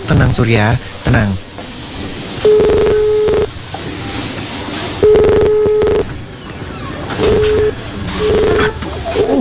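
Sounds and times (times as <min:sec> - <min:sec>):
faint busy background: 0:00.0 - 0:09.4
speech: 0:00.1 - 0:01.5
mobile phone call tones: 0:02.4 - 0:03.5, 0:05.0 - 0:06.2, 0:07.2 - 0:08.7.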